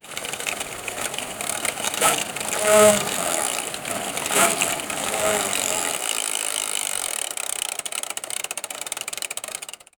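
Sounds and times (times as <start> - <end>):
toy car driven by a mouse: 0.0 - 7.7.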